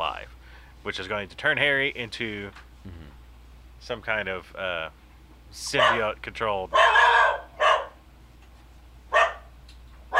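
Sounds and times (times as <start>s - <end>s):
speech: 0.8s - 3.0s, 3.8s - 7.2s
dog barking: 5.8s - 6.1s, 6.7s - 8.0s, 9.1s - 10.1s.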